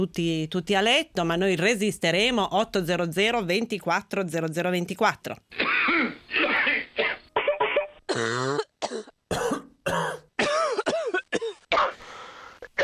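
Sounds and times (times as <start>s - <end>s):
speech: 0.0s - 6.5s, 8.1s - 8.7s
person with flu coughing: 5.5s - 12.0s, 12.6s - 12.8s.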